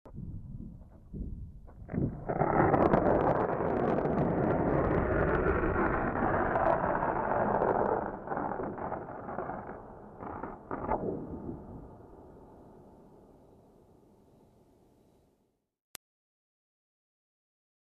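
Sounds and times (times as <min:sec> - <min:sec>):
thunder: 0:00.1 - 0:12.6.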